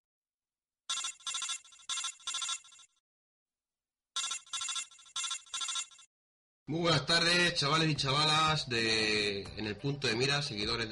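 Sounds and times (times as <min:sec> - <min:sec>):
electronic telephone ringtone for an incoming call: 0:00.9 - 0:03.0, 0:04.2 - 0:06.1
speech: 0:06.7 - 0:10.8.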